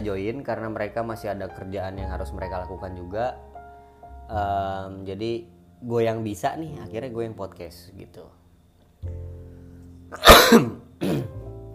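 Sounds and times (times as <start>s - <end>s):
speech: 0.0s - 3.5s, 4.3s - 8.4s, 10.1s - 11.2s
person coughing: 10.1s - 11.4s
throat clearing: 10.2s - 11.4s.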